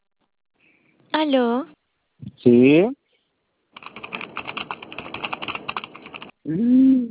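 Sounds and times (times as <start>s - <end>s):
speech: 1.2s - 1.8s, 2.4s - 3.0s, 6.4s - 7.0s
rapid typing on a computer keyboard: 3.8s - 6.3s.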